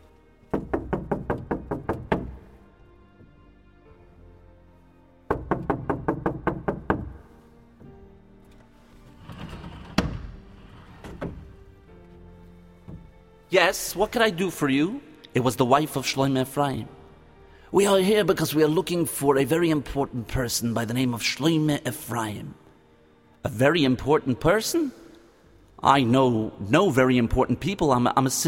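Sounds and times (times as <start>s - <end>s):
quick firm knocking on a door: 0.5s - 2.4s, 5.3s - 7.2s, 12.9s - 13.1s
soft shuffling: 7.2s - 14.1s
speech: 13.5s - 17.0s, 17.7s - 22.6s, 23.4s - 25.0s, 25.8s - 28.4s.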